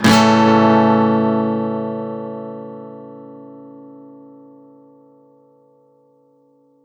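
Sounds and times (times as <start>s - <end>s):
guitar one-shots at 128 BPM in A major: 0.0s - 4.8s.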